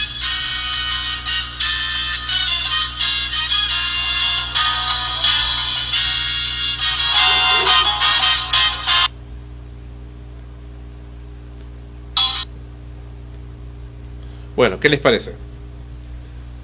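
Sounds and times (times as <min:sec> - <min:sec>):
large loudspeaker at a shop door blaring tinny electronic music: 0:00.0 - 0:09.1
low street hum: 0:00.0 - 0:16.6
speech: 0:14.6 - 0:15.5.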